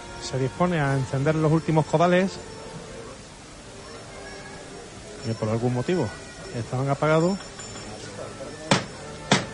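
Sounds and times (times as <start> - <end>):
low murmur of a procession: 0.0 - 9.5
speech: 0.3 - 2.6, 5.2 - 7.5
foreman's wooden hammer striking a processional float: 8.7 - 9.5.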